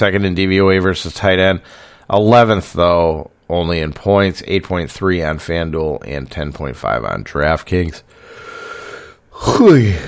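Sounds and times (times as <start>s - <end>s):
speech: 0.0s - 8.5s, 9.4s - 10.0s
faint steady hum: 0.0s - 10.0s
yawn with breathy intake and falling voiced groan: 8.7s - 10.0s.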